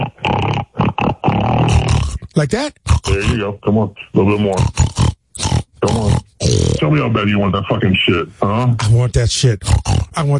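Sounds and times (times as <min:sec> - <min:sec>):
person imitating pig oinking: 0:00.0 - 0:03.5, 0:04.4 - 0:06.9, 0:09.6 - 0:10.3
speech: 0:02.4 - 0:04.8, 0:05.8 - 0:10.3.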